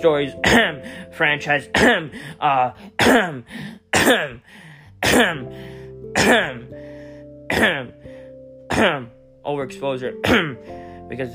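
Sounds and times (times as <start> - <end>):
speech: 0.0 - 6.7, 7.5 - 8.0, 8.8 - 11.3
person clearing throat with something stuck in the throat: 0.4 - 0.8, 1.7 - 2.2, 2.8 - 4.4, 5.0 - 5.5, 6.1 - 6.7, 7.5 - 8.0, 8.7 - 9.2, 10.2 - 10.6.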